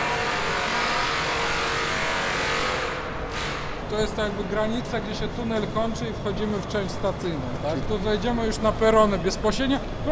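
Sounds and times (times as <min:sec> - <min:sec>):
heavy construction machinery roaring at a railway station: 0:00.0 - 0:04.4
speech: 0:03.9 - 0:10.1.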